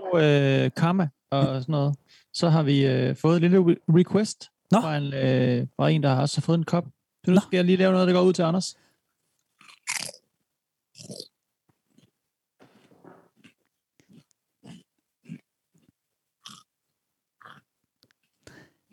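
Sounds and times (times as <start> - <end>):
speech: 0.1 - 8.8
potato chips being chewed: 9.3 - 10.3, 11.0 - 16.7, 17.4 - 18.1.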